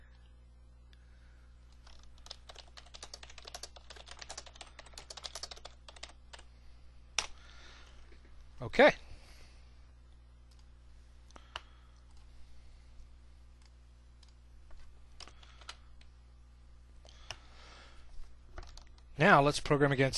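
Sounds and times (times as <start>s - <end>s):
steady low electrical hum: 0.0s - 20.1s
typing on a computer keyboard: 1.7s - 6.5s, 15.2s - 15.8s, 18.6s - 19.0s
speech: 8.7s - 9.1s, 19.2s - 20.1s.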